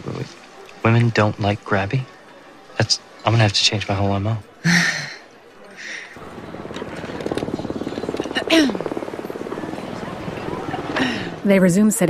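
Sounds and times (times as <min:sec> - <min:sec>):
speech: 0:00.8 - 0:02.1, 0:02.8 - 0:05.0, 0:11.4 - 0:12.0
helicopter rotor thumping: 0:06.2 - 0:11.0.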